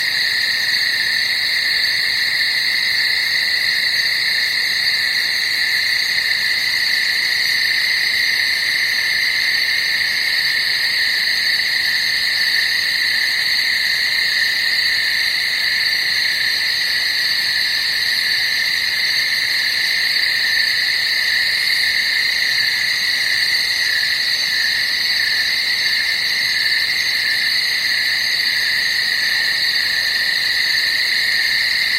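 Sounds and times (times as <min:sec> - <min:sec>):
countryside night ambience: 0:00.0 - 0:31.9.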